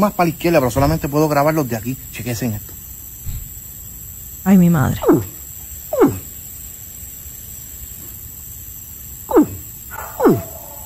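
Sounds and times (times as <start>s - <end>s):
speech: 0.0s - 2.7s, 4.4s - 5.4s
steady hiss: 0.0s - 10.8s
caiman bellowing: 4.9s - 6.5s, 9.3s - 10.8s.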